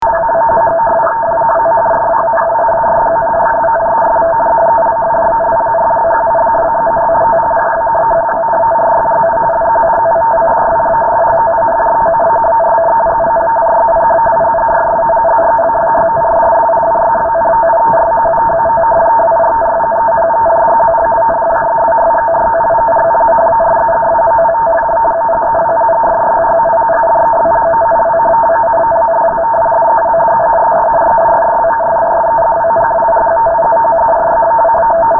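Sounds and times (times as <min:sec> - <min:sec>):
radioteletype signal: 0:00.0 - 0:35.1.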